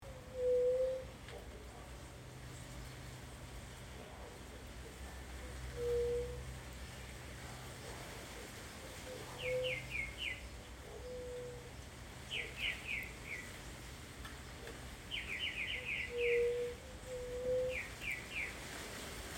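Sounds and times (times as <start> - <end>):
white-tipped dove calling: 0.0 - 1.5, 4.1 - 6.6, 7.4 - 19.3.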